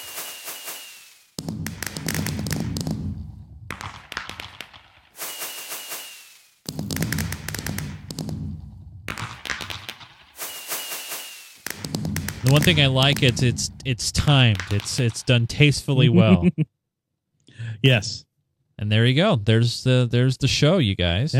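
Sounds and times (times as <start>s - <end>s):
video game firework whistling launch: 0.0s - 1.4s, 5.1s - 6.7s, 9.6s - 11.9s
video game firework sharp crackles and pops: 0.0s - 15.7s
speech: 12.4s - 16.8s, 17.8s - 21.3s
laughter: 15.8s - 16.7s.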